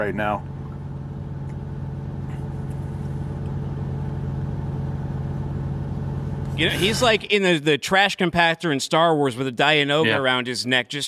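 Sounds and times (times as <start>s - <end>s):
speech: 0.0s - 0.5s, 6.6s - 11.0s
truck engine with badly slipping transmission droning: 2.1s - 7.4s.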